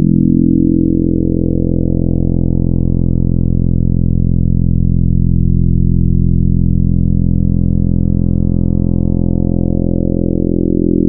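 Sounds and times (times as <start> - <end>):
FM wavetable synth: 0.0 - 11.0.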